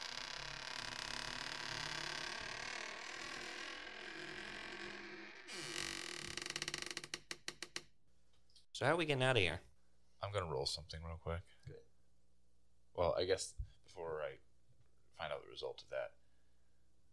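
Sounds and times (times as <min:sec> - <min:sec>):
old wooden door creaking shut: 0:00.0 - 0:08.0
speech: 0:08.8 - 0:09.7, 0:10.3 - 0:11.8, 0:13.0 - 0:14.0, 0:15.6 - 0:16.2.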